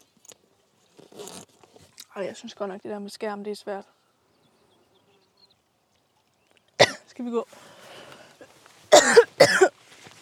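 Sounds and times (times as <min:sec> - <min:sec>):
speech: 0:02.2 - 0:04.0, 0:07.2 - 0:07.7
harsh forceful coughs: 0:06.8 - 0:07.1, 0:08.9 - 0:09.7.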